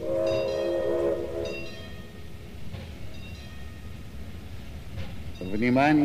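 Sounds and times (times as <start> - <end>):
train horn sustained multi-tone blast: 0.0 - 1.8
train rolling with a steady low rumble and rattle: 0.0 - 6.0.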